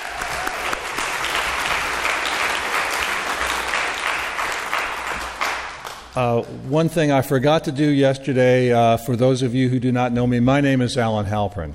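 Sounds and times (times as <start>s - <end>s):
crowd applauding: 0.0s - 6.8s
speech: 6.2s - 11.7s.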